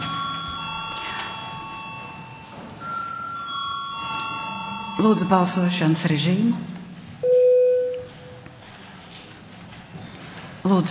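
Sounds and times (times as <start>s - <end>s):
electric bell ringing in a parliament chamber before a vote: 0.0s - 5.9s
speech: 5.0s - 6.8s, 10.7s - 10.8s.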